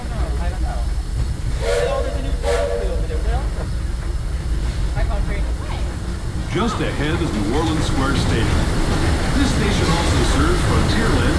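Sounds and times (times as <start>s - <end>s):
theme park train running along its rails with a steady rumble and hiss: 0.0s - 11.3s
whistle-like bursts: 1.6s - 3.4s
speech: 6.6s - 11.3s.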